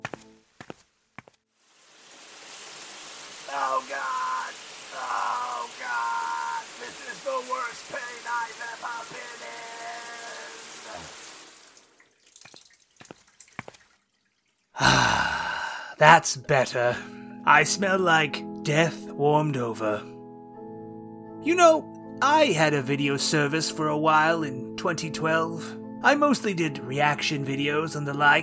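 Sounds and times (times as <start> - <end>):
shower water running: 1.6 - 15.0
person sighing and groaning: 3.6 - 6.6, 14.8 - 16.0
speech: 16.0 - 20.1, 21.4 - 28.4.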